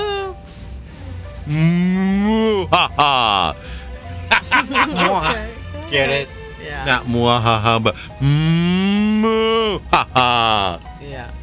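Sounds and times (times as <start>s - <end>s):
speech: 1.5s - 1.7s, 2.6s - 3.4s, 5.2s - 11.4s
laughter: 4.1s - 5.6s
person imitating a cow mooing: 8.2s - 9.3s.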